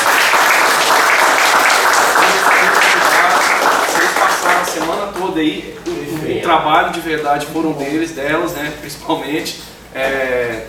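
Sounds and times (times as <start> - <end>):
crowd applauding presenting groups of girls: 0.0 - 5.3
speech: 5.3 - 10.6.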